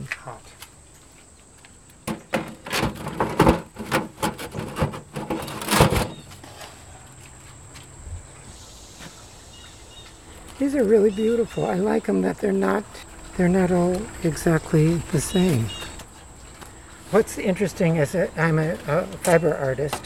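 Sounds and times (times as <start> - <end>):
speech: 0.2 - 0.7, 10.6 - 15.8, 17.1 - 20.0
thick metal bread oven door clanking and scraping as it is fitted shut: 2.0 - 6.3.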